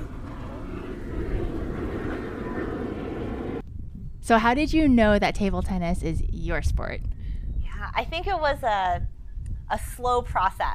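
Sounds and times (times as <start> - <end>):
airplane flying overhead: 0.0 - 3.7
speech: 4.3 - 7.1, 7.8 - 9.1, 9.7 - 10.7.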